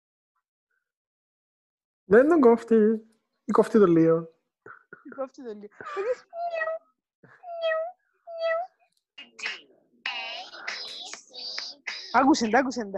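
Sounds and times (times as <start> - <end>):
speech: 2.1 - 4.3, 5.1 - 6.7, 12.1 - 12.9
kitten meowing: 6.4 - 6.8, 7.5 - 8.7
louder scratchy noises: 8.4 - 12.6.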